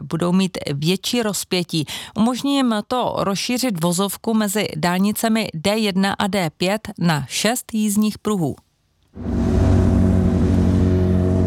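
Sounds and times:
speech: 0:00.1 - 0:08.6, 0:09.2 - 0:09.4
city traffic with cars moving slowly, engine drone: 0:09.2 - 0:11.4.

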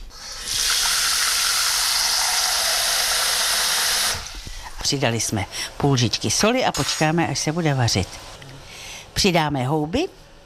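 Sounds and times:
water pouring into a pot: 0:00.2 - 0:04.4
speech: 0:04.9 - 0:08.4, 0:09.2 - 0:10.2.

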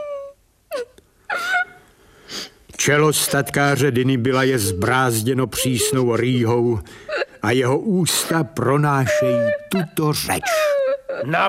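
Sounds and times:
woman sobbing and wailing: 0:00.0 - 0:01.8, 0:03.1 - 0:11.4
speech: 0:02.8 - 0:11.4.

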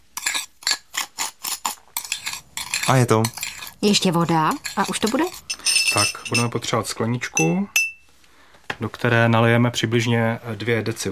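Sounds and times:
spoon stirring powdered ingredients with coloring in a container: 0:00.0 - 0:06.6
speech: 0:02.9 - 0:07.8, 0:08.8 - 0:11.1.

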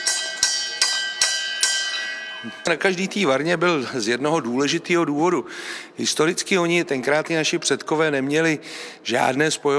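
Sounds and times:
bright metal bell by brewing kettles in a brewhouse: 0:00.0 - 0:03.3
speech: 0:02.4 - 0:09.7.

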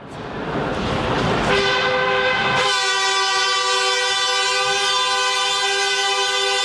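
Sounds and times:
Prague metro train rumbling into a station: 0:00.0 - 0:06.6
Prague metro train horn blaring on arrival at the station: 0:01.5 - 0:06.6.

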